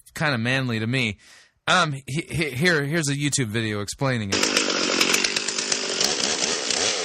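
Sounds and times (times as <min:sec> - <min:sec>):
speech: 0:00.2 - 0:04.7
chainsaw cutting into a large wood log: 0:04.3 - 0:07.0.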